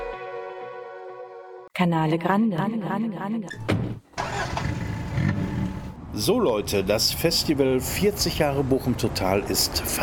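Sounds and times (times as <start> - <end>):
speech: 1.8 - 4.0, 6.2 - 10.0
car engine droning inside a moving vehicle: 4.2 - 6.9
broadband road noise: 4.2 - 10.0.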